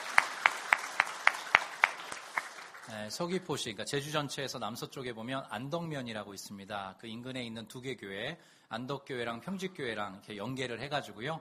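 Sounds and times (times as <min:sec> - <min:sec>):
rhythmic clapping at a church gathering: 0:00.0 - 0:03.2
speech: 0:02.9 - 0:11.3.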